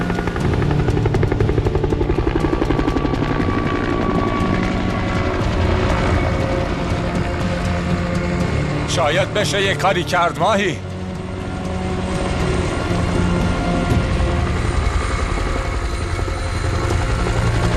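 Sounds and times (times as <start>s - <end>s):
helicopter flying overhead: 0.0s - 17.7s
speech: 9.0s - 10.9s.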